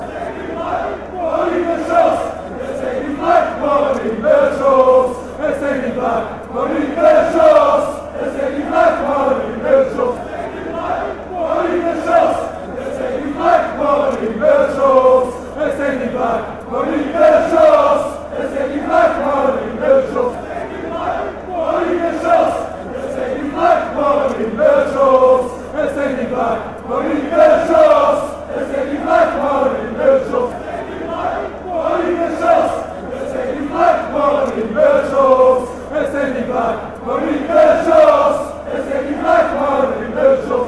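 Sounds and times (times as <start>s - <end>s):
football crowd chanting: 0.0s - 40.6s.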